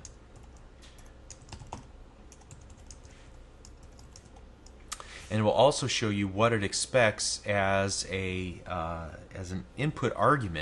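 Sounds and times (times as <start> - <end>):
typing on a computer keyboard including the arrow keys: 0.0 - 4.8
speech: 5.3 - 10.6.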